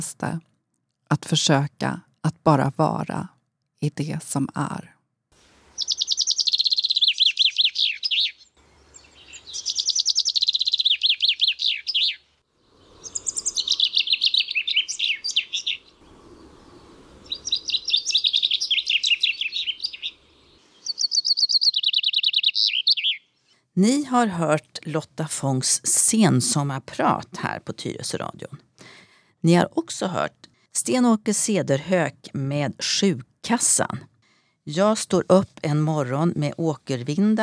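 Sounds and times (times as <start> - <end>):
speech: 0.0 - 0.5, 1.1 - 4.9, 23.8 - 37.4
birds chirping and singing outdoors: 5.8 - 23.4.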